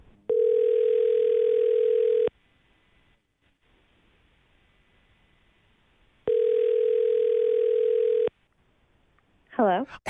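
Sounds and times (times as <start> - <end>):
phone line outgoing ringback tone: 0.3 - 2.3, 6.3 - 8.3
speech: 9.8 - 10.0.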